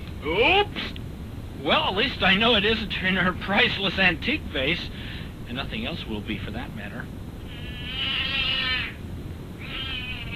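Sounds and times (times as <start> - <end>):
speech: 0.2 - 0.8, 1.6 - 7.2
cat yowling after being stepped on: 7.6 - 9.0, 9.6 - 10.3.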